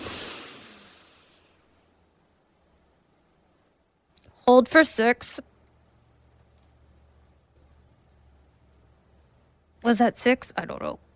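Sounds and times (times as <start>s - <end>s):
person breathing in during a counted breathing exercise: 0.0s - 1.7s
speech: 4.5s - 5.5s, 9.9s - 11.0s.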